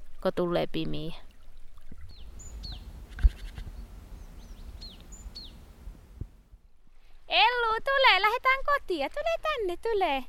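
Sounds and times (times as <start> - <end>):
speech: 0.2 - 1.3, 7.8 - 10.2
titmouse singing in forest: 2.1 - 2.9, 3.7 - 5.6.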